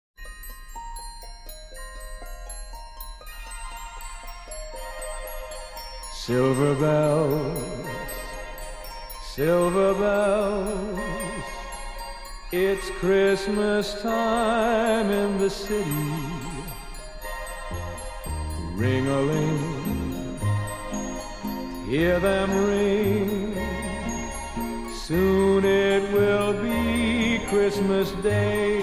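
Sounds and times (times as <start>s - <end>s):
orchestra: 3.6s - 28.8s
male vocalist singing: 6.2s - 8.4s, 9.2s - 11.6s, 12.5s - 28.8s.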